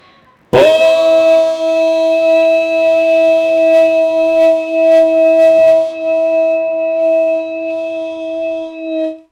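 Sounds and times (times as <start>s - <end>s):
long blow on a wind instrument: 0.0s - 9.3s.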